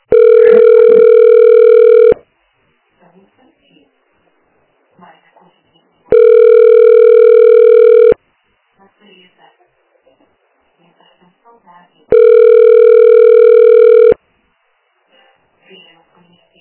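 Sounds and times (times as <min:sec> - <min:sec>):
telephone ringback tone during a call: 0:00.1 - 0:02.2, 0:06.1 - 0:08.2, 0:12.1 - 0:14.2.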